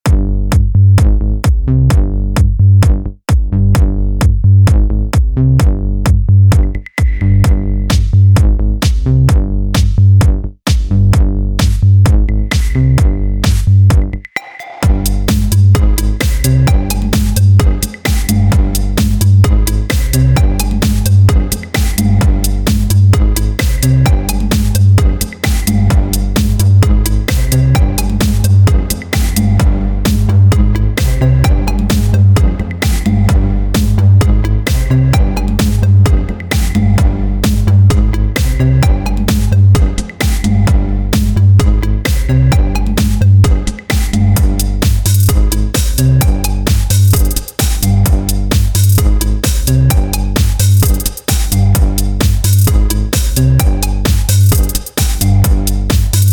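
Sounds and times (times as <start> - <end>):
bass groove: 0.0 - 56.3.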